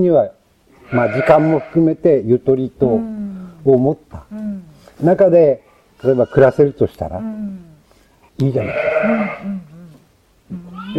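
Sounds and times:
speech: 0.0 - 7.7, 8.4 - 9.7
sheep bleating on a sheep farm in Miyagi Prefecture Japan: 0.8 - 1.9, 8.4 - 9.9, 10.5 - 10.9.

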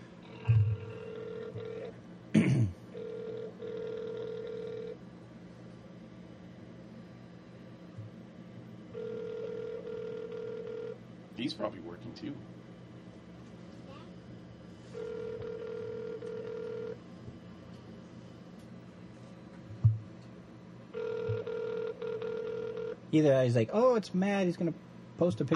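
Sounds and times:
phone ringback tone over a speaker: 0.3 - 1.9, 2.9 - 5.0, 8.9 - 11.0, 14.9 - 17.0, 20.9 - 23.0
bumps: 0.5 - 0.9
speech: 11.4 - 12.7, 23.2 - 25.5.

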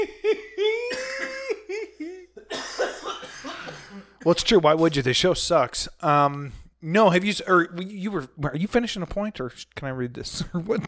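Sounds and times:
raspy coughing after smoking: 0.7 - 5.0
speech: 4.2 - 10.8.

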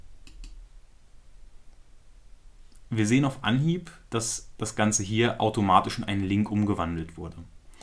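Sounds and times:
quiet low hum: 0.0 - 7.8
crisp computer mouse clicks: 0.2 - 0.6
speech: 2.9 - 7.6.

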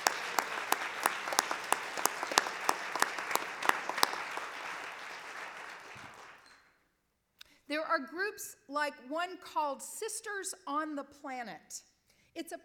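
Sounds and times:
room full of people applauding: 0.0 - 6.5
speech: 7.9 - 12.6.

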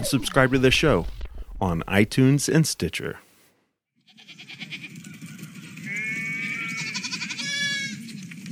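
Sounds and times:
speech: 0.0 - 3.2
sheep bleating: 4.1 - 8.5.

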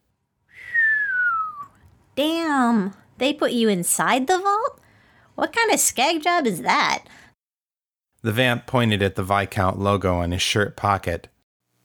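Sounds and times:
woman whistling softly with a downward glide: 0.5 - 1.8
speech: 2.2 - 4.8, 5.4 - 7.2, 8.2 - 11.3.

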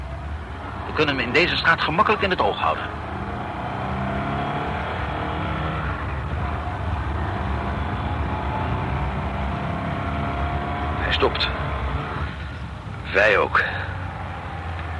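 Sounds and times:
car engine humming at low speed: 0.0 - 14.9
road noise of a car rolling along a street: 0.0 - 14.9
speech: 1.0 - 3.0, 11.2 - 11.6, 13.2 - 13.8.

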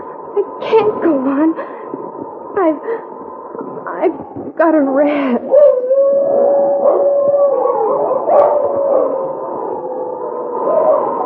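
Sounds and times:
speech: 0.4 - 1.8, 2.6 - 5.6
wolves howling in a sustained chorus: 5.4 - 11.2.

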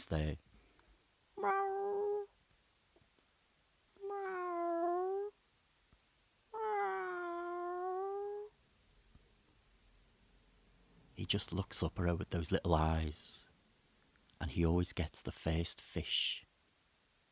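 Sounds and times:
speech: 0.0 - 0.5, 11.3 - 13.4, 14.4 - 16.5
cat meowing: 1.4 - 2.3, 4.0 - 5.4, 6.5 - 8.5.

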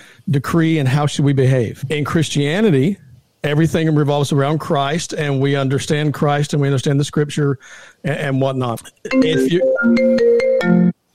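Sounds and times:
speech: 0.2 - 11.0
phone ringtone electronic melody: 9.1 - 11.0.

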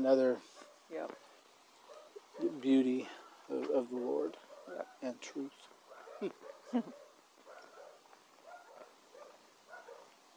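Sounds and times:
speech: 0.0 - 1.3, 2.4 - 7.0
sharp dog barks indoors: 1.8 - 3.2, 4.4 - 5.2, 5.8 - 10.2.

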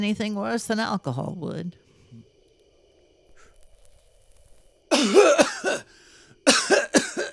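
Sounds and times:
speech: 0.0 - 2.2
faintly wheezy inhale: 3.2 - 3.9, 5.8 - 6.5
harsh coughing after inhaling smoke: 4.9 - 7.3.

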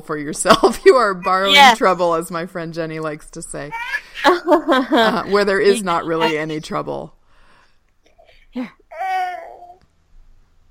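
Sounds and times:
speech: 0.0 - 7.2, 8.5 - 8.8
laughter: 4.2 - 6.6
toddler whining: 6.1 - 6.6, 8.9 - 9.8.

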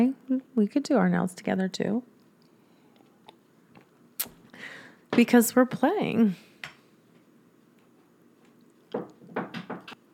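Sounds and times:
speech: 0.0 - 2.1, 4.2 - 6.5
soft knocks on a door: 8.9 - 10.0.

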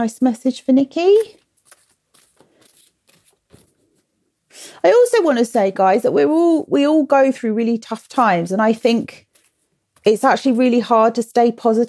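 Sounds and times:
speech: 0.0 - 1.4, 4.8 - 9.3, 10.0 - 11.8
deck of cards being shuffled with papery riffling: 1.1 - 4.1, 9.2 - 10.1.

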